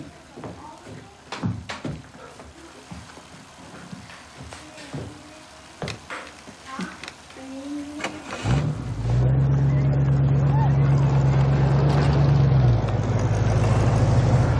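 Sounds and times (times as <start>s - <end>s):
car engine at drag races: 7.7s - 14.5s.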